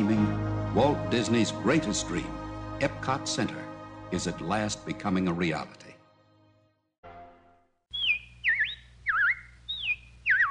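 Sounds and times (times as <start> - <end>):
speech: 0.0 - 5.8
robins singing warbling whistled phrases: 7.9 - 10.5.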